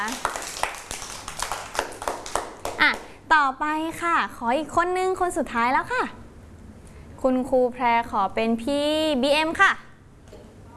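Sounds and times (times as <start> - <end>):
speech: 0.0 - 0.5, 2.8 - 6.2, 7.2 - 9.8
group of children clapping hands: 0.0 - 3.1.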